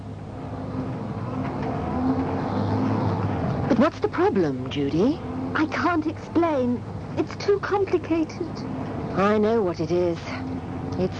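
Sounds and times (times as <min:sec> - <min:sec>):
car engine accelerating: 0:00.0 - 0:11.1
speech: 0:03.8 - 0:11.1.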